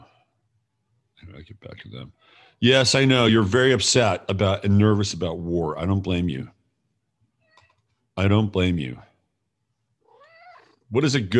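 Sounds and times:
speech: 1.3 - 6.6, 8.2 - 9.1, 10.9 - 11.3
cat meowing: 7.4 - 7.8, 10.0 - 10.8.

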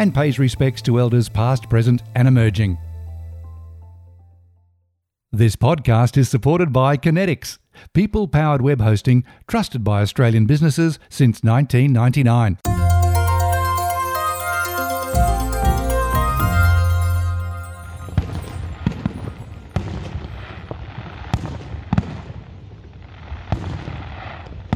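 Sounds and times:
speech: 0.0 - 2.8, 5.3 - 12.8
sustained tonal sound: 12.7 - 19.3
fireworks exploding over showgrounds on New Year's Eve: 18.2 - 24.7.

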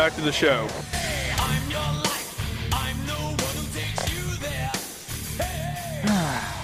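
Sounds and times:
speech: 0.0 - 2.0
distorted heavy metal guitars: 0.0 - 6.6.

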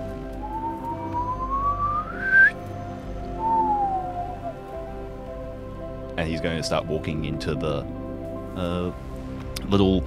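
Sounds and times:
man lightly whistling as a signal: 0.4 - 2.6, 3.4 - 4.6
speech: 6.2 - 8.0, 8.6 - 9.1, 9.7 - 10.0.

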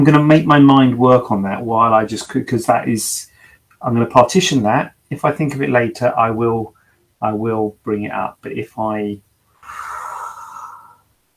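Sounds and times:
speech: 0.0 - 9.9
deep breath: 3.3 - 3.7, 9.6 - 11.1.

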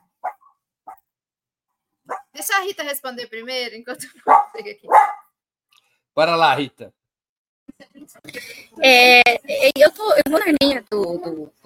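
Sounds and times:
dog yelping: 0.0 - 1.0, 2.1 - 2.4, 4.3 - 5.3
dog barking: 0.0 - 1.1, 2.1 - 2.4, 4.2 - 5.4
speech: 2.4 - 5.1, 6.2 - 7.0, 7.8 - 11.6.

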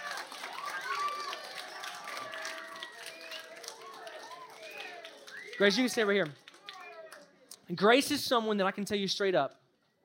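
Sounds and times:
crowd cheering and whooping: 0.0 - 6.2
crowd applause: 0.0 - 7.4
speech: 5.6 - 6.4, 7.7 - 9.6.

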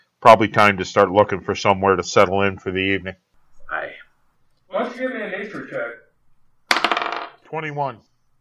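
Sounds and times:
speech: 0.2 - 3.2, 7.5 - 8.1
twenty-sided die clattering across a hard tabletop: 6.7 - 7.4.

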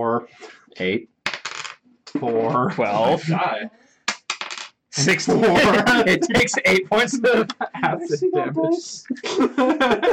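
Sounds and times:
speech: 0.0 - 1.1, 2.1 - 3.8, 5.0 - 10.1
four-sided dice clattering onto a table: 1.3 - 1.8, 4.1 - 4.8
laughter: 2.5 - 3.6, 5.0 - 10.1.

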